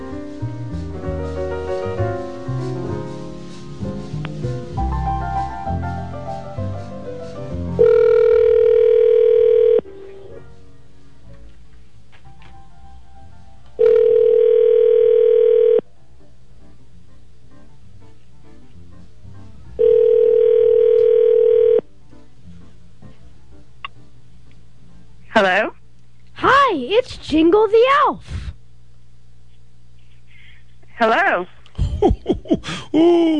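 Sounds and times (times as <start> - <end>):
music: 0.0 - 27.0
outgoing phone call ringback tones: 7.8 - 10.4, 13.8 - 15.8, 19.8 - 21.8
speech: 27.4 - 28.3, 31.0 - 33.3
laughter: 31.7 - 33.3.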